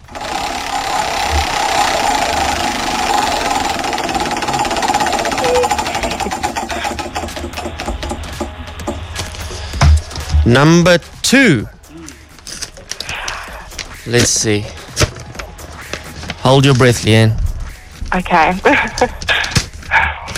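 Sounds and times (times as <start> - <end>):
large prize wheel spun during an on-air giveaway: 0.0 - 8.6
speech: 10.5 - 11.8, 14.1 - 14.8, 16.4 - 17.4, 18.1 - 19.2.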